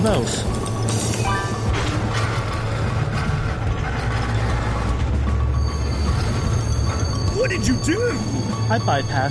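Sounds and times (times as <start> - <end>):
speech: 0.0 - 1.0, 7.4 - 9.3
train rumbling along the tracks: 0.0 - 9.3
thin metallic squeals of a train: 0.6 - 9.3.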